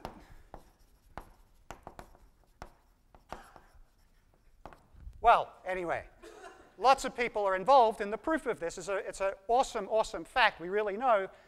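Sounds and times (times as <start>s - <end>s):
writing on a board during a mathematics lecture: 0.0s - 5.2s
speech: 5.3s - 6.2s, 6.8s - 11.4s.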